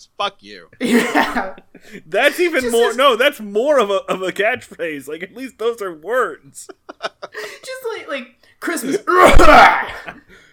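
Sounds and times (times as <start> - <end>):
speech: 0.0 - 10.4
fake cough disguising a word: 0.8 - 1.6
laughter: 0.8 - 2.8, 6.6 - 7.6.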